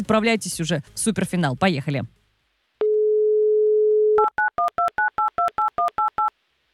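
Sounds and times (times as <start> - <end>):
speech: 0.0 - 2.2
telephone dial tone: 2.8 - 6.3.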